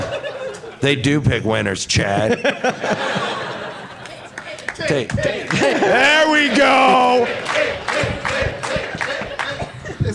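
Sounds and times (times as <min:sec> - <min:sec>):
laughter: 0:00.0 - 0:00.9, 0:02.0 - 0:10.1
speech: 0:00.8 - 0:03.5, 0:04.8 - 0:08.5
scattered clapping: 0:04.0 - 0:09.8
live audience cheering and shouting: 0:05.1 - 0:09.5.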